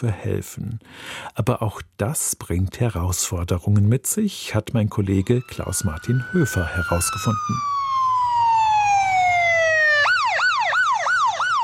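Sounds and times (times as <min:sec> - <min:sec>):
speech: 0:00.0 - 0:08.1
faint road rumble: 0:04.9 - 0:10.2
ambulance siren heading to an emergency call in Seattle Washington USA: 0:05.0 - 0:11.6.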